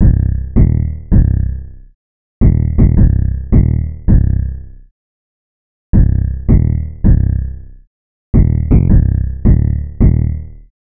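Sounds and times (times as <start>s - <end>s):
808 drum machine bass loop: 0.0s - 1.5s, 2.4s - 4.4s, 6.0s - 7.4s, 8.4s - 10.5s.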